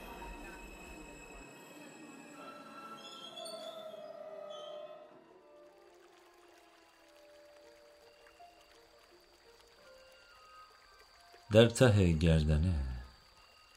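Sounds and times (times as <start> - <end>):
stationary train humming: 0.0 - 3.7
train wheels squealing while slowing at a small station: 0.0 - 5.2
speech: 11.5 - 12.9.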